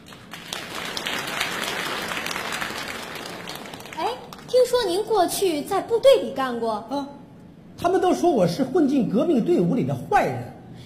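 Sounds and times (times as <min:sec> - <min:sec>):
audience applause welcoming contestants at a crosstalk and comedy sketch competition: 0:00.0 - 0:04.5
speech: 0:04.6 - 0:07.2, 0:07.8 - 0:10.5.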